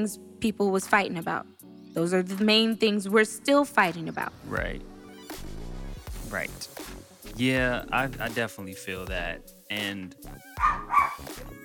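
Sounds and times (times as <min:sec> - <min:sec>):
speech: 0:00.0 - 0:05.4, 0:06.3 - 0:11.6
dog barking: 0:10.6 - 0:11.3.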